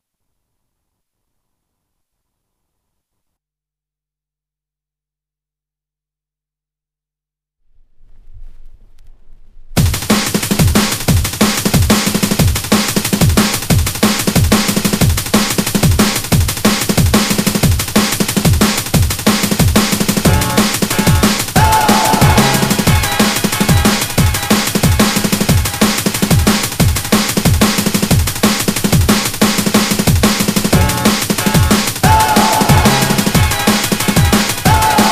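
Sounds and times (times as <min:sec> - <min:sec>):
drum and bass jungle and old skool music: 0:09.8 - 0:35.1.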